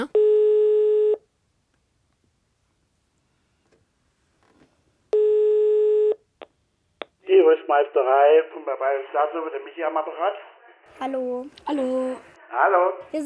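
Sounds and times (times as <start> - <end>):
telephone ringback tone on speakerphone during outgoing call: 0.2 - 1.2, 5.2 - 6.2
speech: 7.7 - 13.2.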